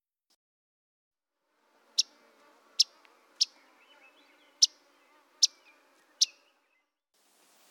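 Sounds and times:
Myrtle yellow-rumped warbler check calls: 1.8 - 6.9
soft bird chatter: 1.8 - 6.9.

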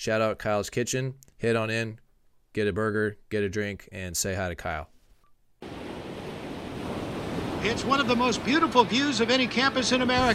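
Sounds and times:
speech: 0.0 - 2.0, 2.6 - 4.9, 7.6 - 10.3
ocean waves crashing onto the shore: 5.6 - 10.3.

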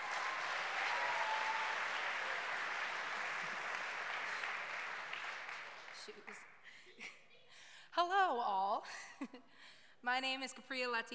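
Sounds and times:
audience applause: 0.0 - 6.4
speech: 6.1 - 7.2, 8.0 - 11.1.

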